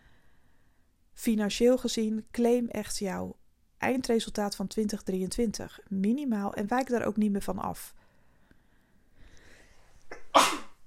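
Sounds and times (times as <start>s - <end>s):
speech: 1.2s - 8.0s
brief quiet inhale: 8.0s - 9.9s
single sharp sneeze: 10.1s - 10.8s.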